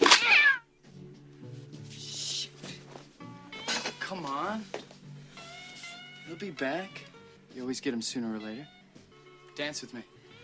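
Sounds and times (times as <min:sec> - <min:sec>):
cat meowing: 0:00.0 - 0:00.7
speech: 0:04.3 - 0:04.8, 0:06.3 - 0:08.8, 0:09.6 - 0:10.1.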